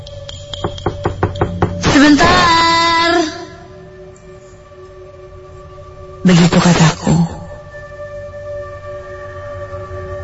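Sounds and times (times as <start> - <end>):
knocking on an apartment door: 0.6 - 2.0
speech: 2.0 - 2.6, 6.2 - 7.0.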